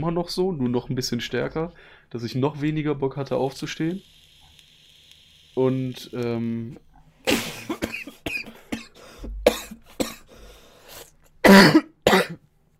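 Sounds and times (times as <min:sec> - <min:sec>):
speech: 0:00.0 - 0:04.2, 0:05.6 - 0:06.9, 0:11.5 - 0:11.8
person coughing from laughing: 0:07.3 - 0:10.3, 0:11.4 - 0:12.4.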